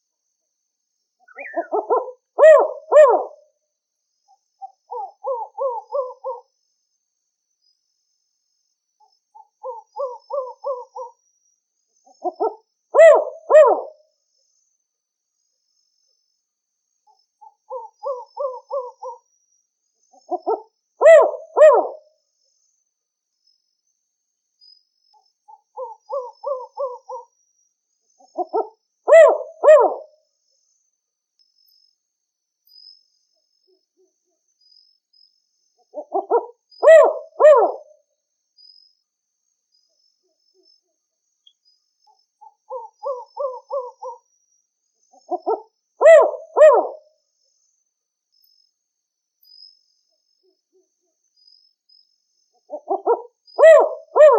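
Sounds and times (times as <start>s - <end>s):
black owl calling: 1.3s - 3.4s, 4.6s - 6.4s, 9.0s - 11.2s, 12.2s - 14.0s, 17.4s - 19.2s, 20.2s - 22.0s, 25.5s - 27.3s, 28.2s - 30.1s, 35.9s - 38.0s, 42.1s - 44.3s, 45.2s - 47.1s, 52.6s - 54.3s.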